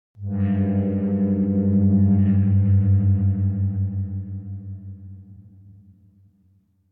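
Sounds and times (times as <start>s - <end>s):
bass horn reminder tone with dissonant higher semitone: 0.2s - 5.7s.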